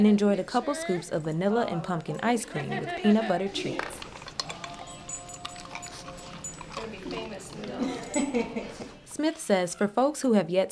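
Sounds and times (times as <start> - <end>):
speech: 0.0 - 4.0, 8.3 - 10.7
indistinct voices: 0.5 - 8.4
dog whining and yipping: 4.9 - 6.8.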